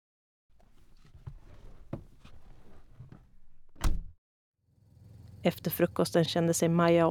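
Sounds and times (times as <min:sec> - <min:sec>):
shuffling of someone moving about: 0:00.5 - 0:03.8
door swinging shut with a solid thud: 0:00.6 - 0:04.2
speech: 0:05.4 - 0:07.1.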